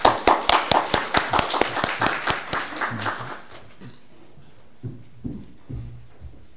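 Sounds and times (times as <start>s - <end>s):
small audience clapping: 0.0s - 3.8s
soft knocks: 4.8s - 6.5s.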